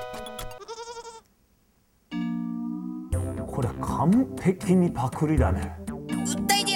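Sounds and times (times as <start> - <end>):
goat bleating: 0.6 - 1.3
speech: 3.6 - 6.6.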